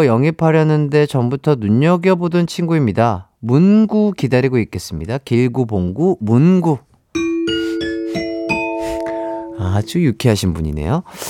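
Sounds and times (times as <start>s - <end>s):
speech: 0.0s - 7.2s, 9.7s - 11.2s
ding-dong-dang correct answer chime melody: 7.2s - 10.2s.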